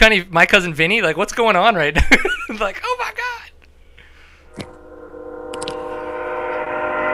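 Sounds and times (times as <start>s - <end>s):
speech: 0.0s - 3.2s
passing train horn blaring multi-toned chord: 4.7s - 7.1s.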